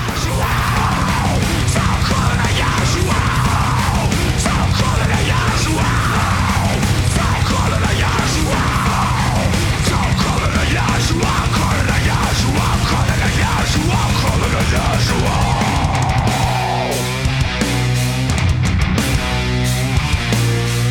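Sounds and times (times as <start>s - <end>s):
shouted backing vocals in a rock track: 0.0s - 17.4s
loud dense rock track with heavy guitars and drums: 0.0s - 20.9s.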